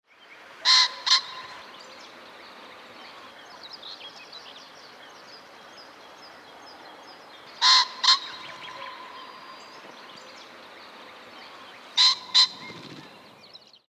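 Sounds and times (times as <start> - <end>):
common pheasant Phasianus colchicus crowing: 0.6 - 2.0, 7.6 - 10.6, 11.5 - 13.2.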